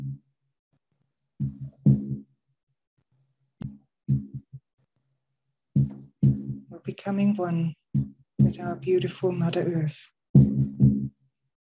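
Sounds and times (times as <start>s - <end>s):
low thumps in irregular paired beats: 1.4s - 2.2s, 3.6s - 4.6s, 5.8s - 6.7s, 7.9s - 8.8s, 10.4s - 11.1s
speech: 7.0s - 7.8s, 8.5s - 10.2s.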